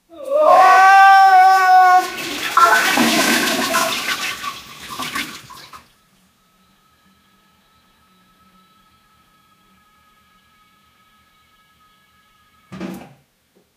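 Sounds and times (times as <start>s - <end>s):
man screaming: 0.0s - 4.0s
diarrhea sounds: 0.1s - 5.4s.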